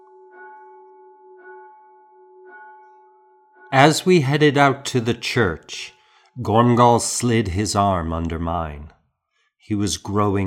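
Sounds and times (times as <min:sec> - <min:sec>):
church bell tolling for tierce: 0:00.0 - 0:06.2
speech: 0:03.8 - 0:09.0, 0:09.6 - 0:10.4.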